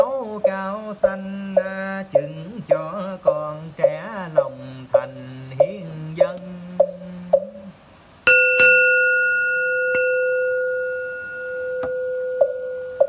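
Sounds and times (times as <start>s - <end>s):
speech: 0.0s - 4.4s
temple bell struck during a Buddhist chant: 8.3s - 13.0s.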